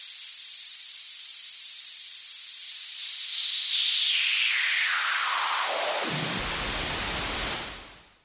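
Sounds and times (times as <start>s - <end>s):
Roland JV880 synthesizer with high-pass filter: 2.7s - 8.1s.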